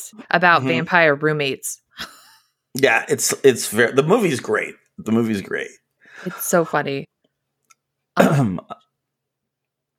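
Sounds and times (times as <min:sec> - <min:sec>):
speech: 0:00.1 - 0:02.2, 0:02.8 - 0:07.1, 0:08.2 - 0:08.9
person clearing throat: 0:08.2 - 0:08.9.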